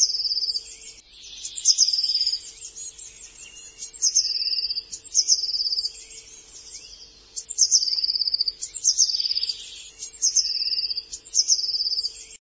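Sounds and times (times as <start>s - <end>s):
bird calling in high chirps and rapid trilled phrases: 0.0s - 12.3s
low constant hum: 0.0s - 12.3s.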